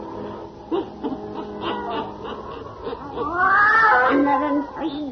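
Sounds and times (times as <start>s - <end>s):
laughter: 0.6s - 4.7s
black cat yowling and meowing: 1.4s - 2.2s, 3.1s - 4.8s.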